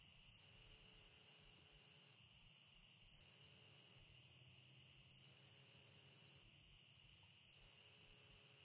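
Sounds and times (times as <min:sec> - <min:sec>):
soft constant tone: 0:00.0 - 0:08.6
Nebraska conehead producing a shrill continuous buzz: 0:00.3 - 0:02.2, 0:03.1 - 0:04.1, 0:05.2 - 0:06.5, 0:07.5 - 0:08.6.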